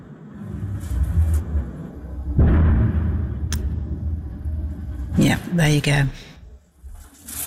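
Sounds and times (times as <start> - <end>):
steady low rumble: 0.0 - 7.1
distant missile explosion boom: 2.2 - 5.2
speech: 5.5 - 6.3.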